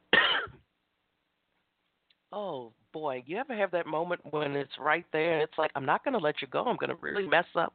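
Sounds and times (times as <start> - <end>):
harsh cough: 0.1 - 0.6
speech: 2.3 - 7.7.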